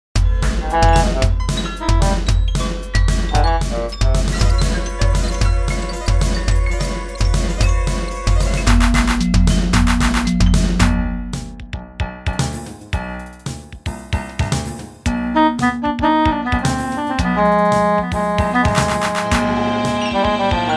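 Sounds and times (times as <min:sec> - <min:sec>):
frustrated music: 0:00.2 - 0:12.7, 0:14.6 - 0:20.7.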